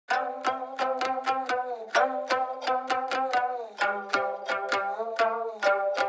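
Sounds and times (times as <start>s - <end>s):
plucked nyatiti stringed instrument playing lead melody: 0.1s - 6.0s.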